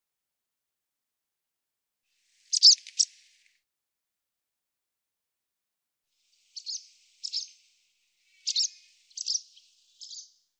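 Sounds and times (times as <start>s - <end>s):
sharp high bird chirps: 2.5s - 3.1s, 6.6s - 7.6s, 8.4s - 10.4s.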